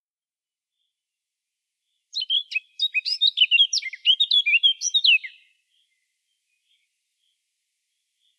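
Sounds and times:
Eurasian blackcap Sylvia atricapilla singing a fast varied warble: 2.2s - 5.4s.

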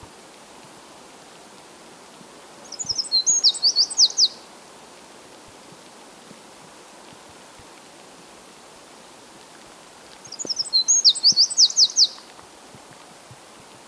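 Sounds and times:
faint hiss: 0.0s - 13.8s
Eurasian wren Troglodytes troglodytes song: 2.6s - 4.5s, 10.2s - 12.3s.

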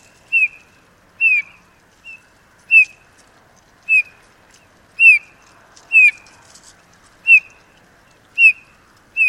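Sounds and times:
Eurasian bullfinch Pyrrhula pyrrhula piping calls: 0.0s - 3.1s, 3.8s - 4.3s, 5.0s - 6.4s, 7.2s - 9.2s.

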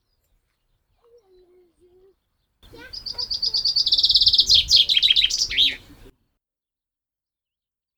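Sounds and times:
common chaffinch Fringilla coelebs singing: 0.0s - 6.1s.

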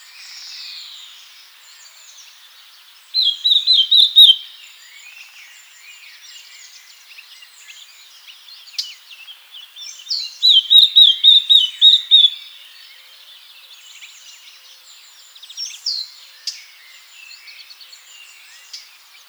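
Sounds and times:
birds twittering: 0.2s - 19.2s
Eurasian blackcap (Sylvia atricapilla) fluty whistles: 3.2s - 4.4s, 10.5s - 12.3s.

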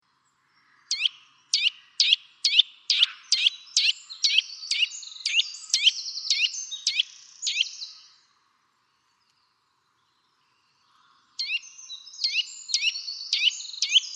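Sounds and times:
Eurasian nuthatch Sitta europaea piping: 0.9s - 8.0s, 11.4s - 14.1s.

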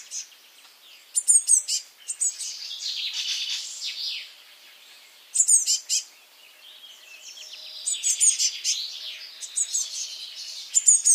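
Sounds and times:
Eurasian blue tit (Cyanistes caeruleus) rasping churr: 1.1s - 4.2s, 5.3s - 6.1s, 7.5s - 11.1s.

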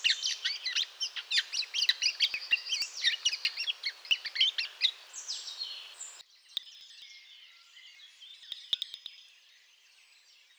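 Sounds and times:
bird twittering: 0.0s - 6.2s.

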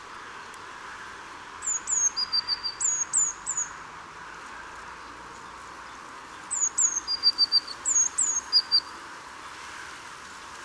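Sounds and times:
soft constant background noise: 0.0s - 10.6s
Eurasian blue tit Cyanistes caeruleus piercing high notes and trill: 1.6s - 3.8s, 5.0s - 9.0s.

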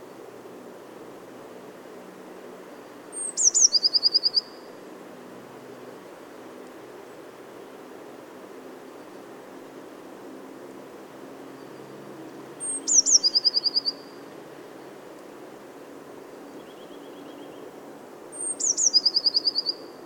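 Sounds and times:
background hiss: 0.0s - 20.0s
Eurasian blue tit Cyanistes caeruleus song: 3.1s - 4.7s, 12.6s - 14.2s, 16.5s - 17.7s, 18.3s - 20.0s.

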